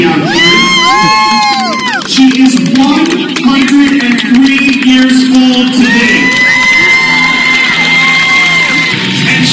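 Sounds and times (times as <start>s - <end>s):
stadium crowd whooping and shouting: 0.2s - 2.4s, 5.5s - 9.5s
large stadium crowd clapping: 0.4s - 9.5s.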